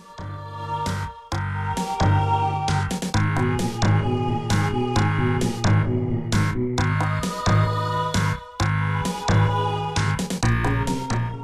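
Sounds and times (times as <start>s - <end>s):
ominous video game background music with low notes and percussive hits: 0.0s - 11.4s.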